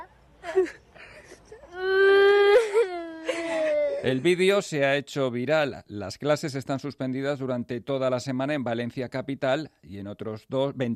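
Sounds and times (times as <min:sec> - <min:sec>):
speech: 0:00.6 - 0:00.8, 0:04.0 - 0:10.9
baby crying: 0:01.5 - 0:04.2.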